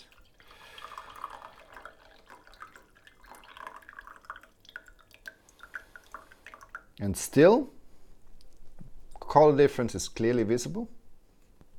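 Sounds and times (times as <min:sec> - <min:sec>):
brewed tea from a second brewing being poured: 0:00.0 - 0:07.0
tea dripping and splashing: 0:00.0 - 0:07.1
speech: 0:07.0 - 0:07.8, 0:09.3 - 0:11.0.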